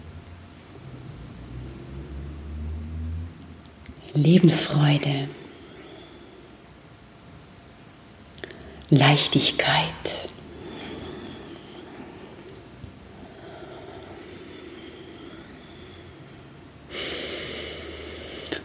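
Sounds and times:
steady low hiss: 0.0 - 18.6
speech: 4.1 - 5.4, 8.9 - 10.3
slow deep breathing: 5.3 - 6.8, 8.4 - 8.9, 10.4 - 18.6.

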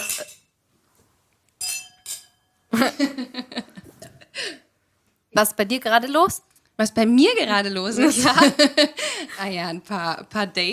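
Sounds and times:
glasses clinking in a toast: 0.0 - 0.5, 1.6 - 2.7
laughter: 2.7 - 4.3, 8.0 - 9.0
speech: 2.8 - 3.6, 5.4 - 10.7.

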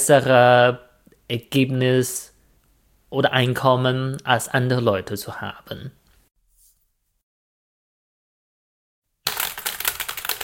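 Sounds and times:
speech: 0.0 - 2.3, 3.1 - 6.0
mechanical keyboard typing: 9.3 - 10.4.

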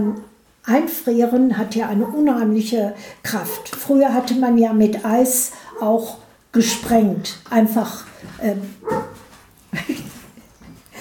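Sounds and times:
dog barking in short sharp bursts: 0.0 - 0.3, 2.0 - 2.3, 5.7 - 5.9, 8.8 - 9.3
speech: 0.0 - 9.1.

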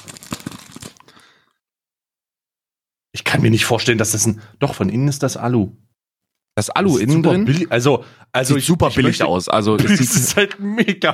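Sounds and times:
protective plastic film peeled off an NFC credit card protector: 0.0 - 1.1
speech: 3.3 - 5.9, 6.6 - 11.1
laughter: 9.7 - 11.0.

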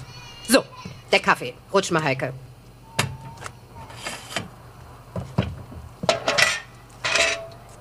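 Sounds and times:
speech: 0.5 - 2.5
metal pot being handled and put away at a café counter: 6.1 - 7.6.

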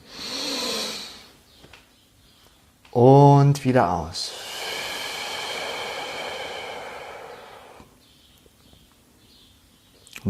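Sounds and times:
deep inhale through the nose: 0.0 - 1.4, 4.2 - 8.0
speech: 2.9 - 4.4.

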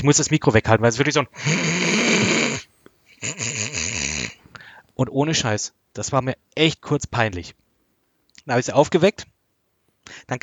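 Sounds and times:
speech: 0.0 - 1.8, 5.0 - 7.6, 8.4 - 9.3, 10.0 - 10.4
voice imitating a mother's loud snoring: 1.3 - 4.4.

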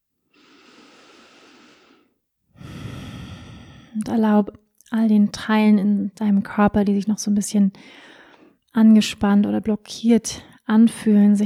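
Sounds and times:
deep breathing in a guided relaxation: 0.4 - 4.0
speech: 4.0 - 8.1, 8.7 - 11.4.

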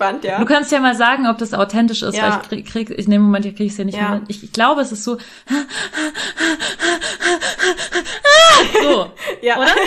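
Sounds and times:
speech: 0.0 - 7.9, 8.6 - 9.8
voice imitating rapid raspy gasping breaths: 5.2 - 8.6.

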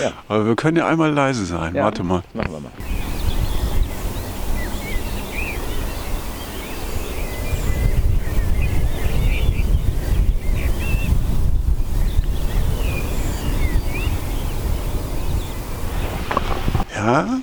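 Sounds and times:
speech: 0.0 - 3.0
faint bird chirps: 2.8 - 16.3
wind gusts buffeting the microphone: 2.8 - 17.0.

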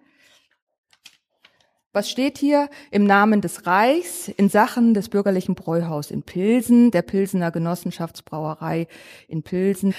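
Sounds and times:
pages of an old document being leafed through: 0.2 - 1.7
speech: 2.0 - 9.9.

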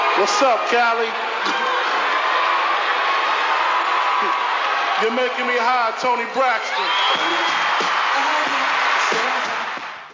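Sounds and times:
dense crowd roaring: 0.0 - 10.1
speech: 0.2 - 1.6, 4.2 - 4.4, 5.0 - 9.5
sustained high whistle: 6.6 - 7.9.

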